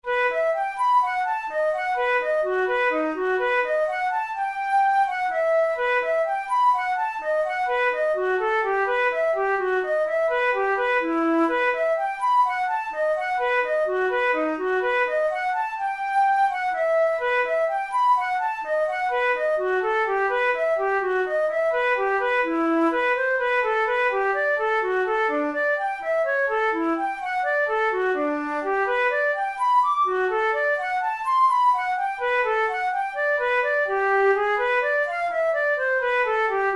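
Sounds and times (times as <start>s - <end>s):
flute playing a minuet without bass: 0.0s - 36.7s.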